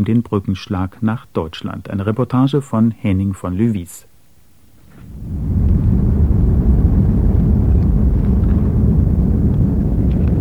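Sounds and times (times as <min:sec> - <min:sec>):
speech: 0:00.0 - 0:04.1
airplane landing at a former air force base airfield: 0:04.8 - 0:10.3.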